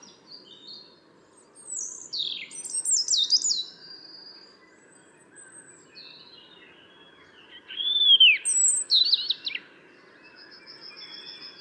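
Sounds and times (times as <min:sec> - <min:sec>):
European robin Erithacus rubecula song: 0:00.0 - 0:11.5.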